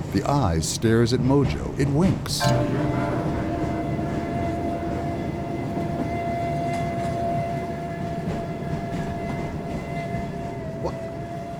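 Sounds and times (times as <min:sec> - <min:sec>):
speech: 0:00.1 - 0:03.2
train rumbling through a tunnel: 0:00.2 - 0:11.4
faint sustained whine from the train: 0:02.4 - 0:10.7.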